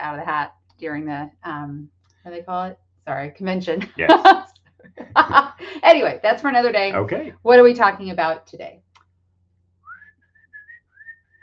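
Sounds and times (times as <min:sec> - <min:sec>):
speech: 0:00.0 - 0:08.9
laughter: 0:04.0 - 0:05.9, 0:06.9 - 0:07.3
person whistling a short tune: 0:09.9 - 0:11.4.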